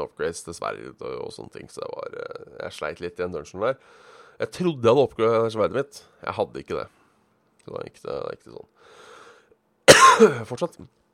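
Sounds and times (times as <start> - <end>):
speech: 0.0 - 7.0, 7.6 - 9.0, 10.2 - 11.0
man giving a single loud harsh cough: 9.9 - 10.6.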